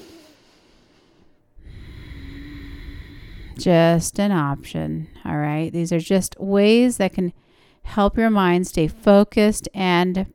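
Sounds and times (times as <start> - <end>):
exhale through a constricted throat during yoga practice: 0.0 - 3.8
speech: 3.6 - 10.3.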